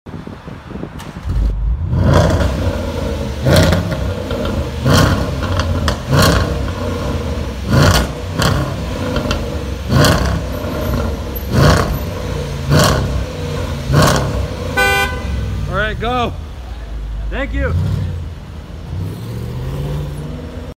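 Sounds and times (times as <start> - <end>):
Range Rover exhaust: 1.0 - 19.6.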